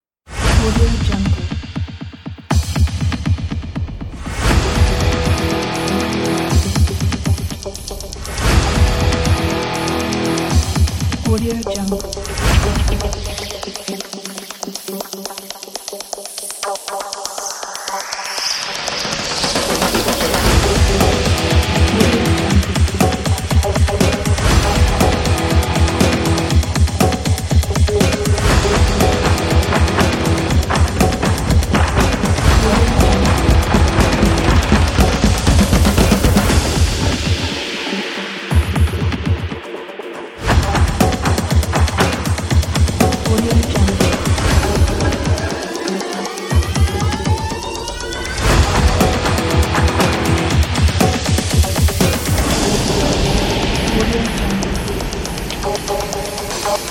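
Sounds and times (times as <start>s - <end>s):
hybrid percussion cinematic drums: 0.3s - 39.8s, 40.4s - 56.8s.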